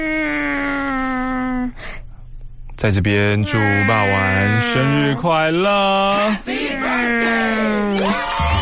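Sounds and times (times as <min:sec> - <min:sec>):
human voice imitating a cat's meow: 0:00.0 - 0:01.7, 0:03.4 - 0:05.4, 0:06.8 - 0:08.2
speech: 0:02.8 - 0:08.5.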